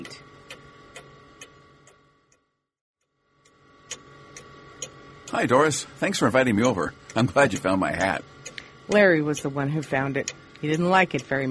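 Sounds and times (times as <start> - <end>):
wind-up clock ticking: 0.4 - 2.4, 3.4 - 5.5, 6.5 - 11.4
speech: 5.3 - 8.3, 8.9 - 11.4.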